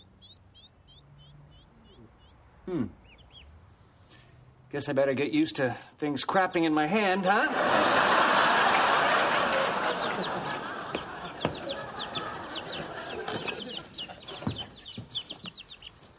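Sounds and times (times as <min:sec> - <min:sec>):
cluster of small birds peeping and chirping: 0:00.0 - 0:04.3, 0:09.5 - 0:16.1
speech: 0:02.7 - 0:03.0, 0:04.7 - 0:08.1
laughter: 0:07.3 - 0:14.8.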